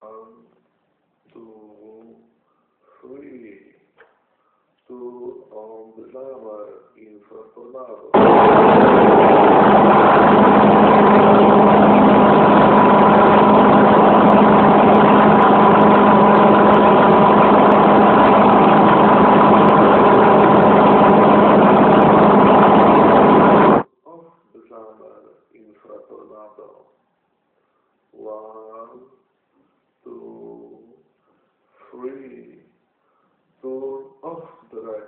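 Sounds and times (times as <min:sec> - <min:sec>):
jammer in real test: 0:08.2 - 0:23.8.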